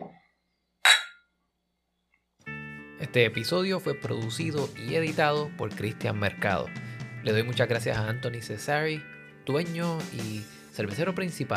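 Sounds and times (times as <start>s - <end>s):
glasses clinking in a toast in a bar: 0.9s - 1.2s
speech: 3.0s - 11.5s.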